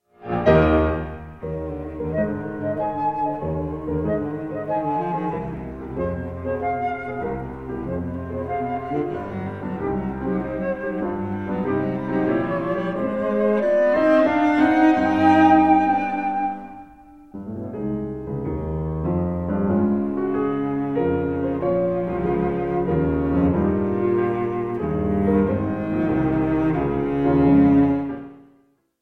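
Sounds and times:
piano in a trio in E minor: 0:00.0 - 0:28.9
violin in a trio in E minor: 0:00.2 - 0:17.6, 0:19.2 - 0:28.6
cello in a trio in E minor: 0:00.2 - 0:28.7
flute in a trio in E minor: 0:00.4 - 0:17.5, 0:20.0 - 0:28.5.

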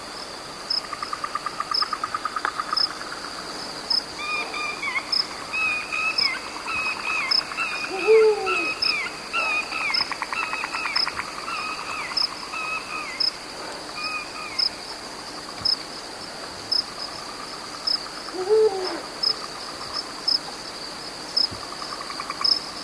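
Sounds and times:
chirping pulsed insect trills: 0:00.2 - 0:22.8
Eurasian eagle-owl giving a deep hoot: 0:04.2 - 0:10.9, 0:18.3 - 0:19.2.

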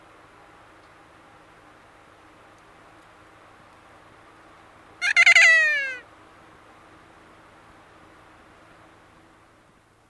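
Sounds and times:
kea screech: 0:05.0 - 0:06.0.

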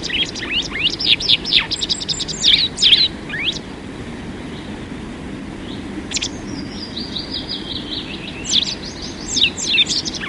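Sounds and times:
white wagtail shrill chirps and slurred note: 0:00.0 - 0:03.6, 0:05.7 - 0:10.2.

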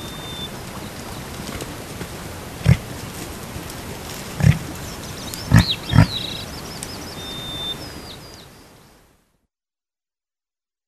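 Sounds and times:
background hiss: 0:00.0 - 0:09.3
reindeer grunting: 0:02.6 - 0:03.0, 0:04.3 - 0:04.8, 0:05.4 - 0:06.4
faint high bird chirps: 0:04.4 - 0:09.0.

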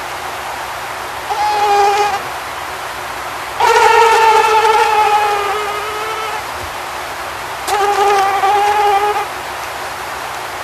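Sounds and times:
mosquito flight whine: 0:01.2 - 0:02.5, 0:03.5 - 0:06.6, 0:07.6 - 0:09.4.

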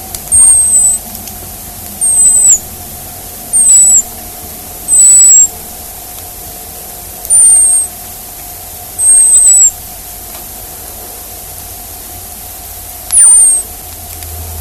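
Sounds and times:
Hazel dormouse uttering drawn-out very high whistled squeaks: 0:00.0 - 0:01.0, 0:02.0 - 0:02.8, 0:03.5 - 0:04.1, 0:04.9 - 0:05.7, 0:07.3 - 0:07.9, 0:09.0 - 0:09.8, 0:13.1 - 0:13.7
steady hum: 0:00.0 - 0:14.6.

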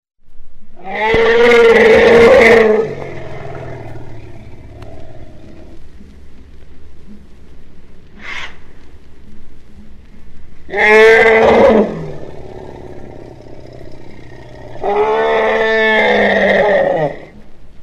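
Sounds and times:
speech: 0:00.8 - 0:01.6
Asian elephant trumpet calls: 0:00.8 - 0:05.8, 0:10.7 - 0:17.3.

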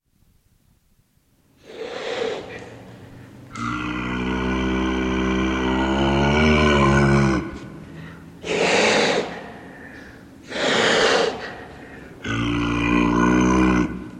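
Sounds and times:
clouded leopard sustained low moan: 0:01.9 - 0:09.5, 0:11.3 - 0:14.1.

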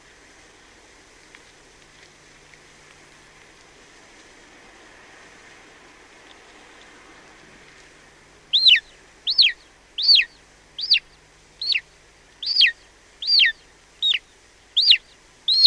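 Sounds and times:
golden eagle high thin downslurred yelps: 0:08.5 - 0:15.6.

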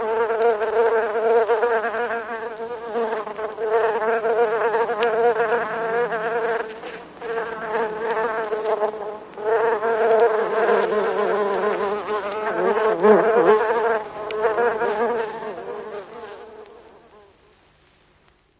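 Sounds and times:
buff-tailed bumblebee buzzing in flight: 0:00.0 - 0:17.3.

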